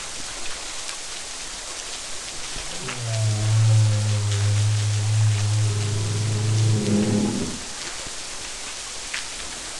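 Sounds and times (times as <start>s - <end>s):
tonal call: 2.7s - 7.9s.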